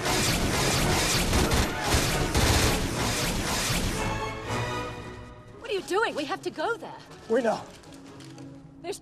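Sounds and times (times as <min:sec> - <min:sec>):
staff-shaped energy weapons firing laser bullets: 0:00.1 - 0:04.1
speech: 0:06.1 - 0:07.8.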